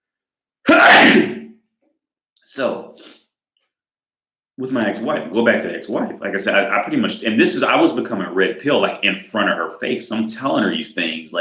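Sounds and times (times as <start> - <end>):
single loud sneeze with breathy exhale: 0.7 - 1.5
speech: 2.4 - 3.2, 4.6 - 11.3.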